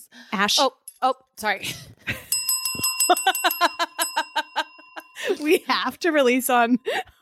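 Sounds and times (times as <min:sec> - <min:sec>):
speech: 0:00.3 - 0:02.3, 0:05.4 - 0:07.2
bicycle bell ringing in bright metallic dings: 0:02.3 - 0:05.9.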